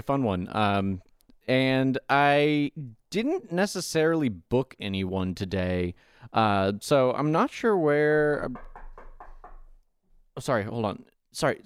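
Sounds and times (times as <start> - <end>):
speech: 0.0 - 8.7, 10.4 - 11.6
firm knocking on a door: 8.4 - 9.8.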